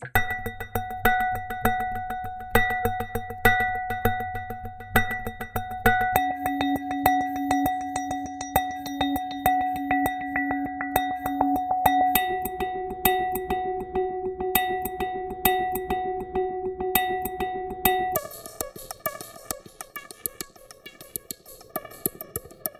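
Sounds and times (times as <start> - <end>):
tonal percussion: 0.2 - 22.7.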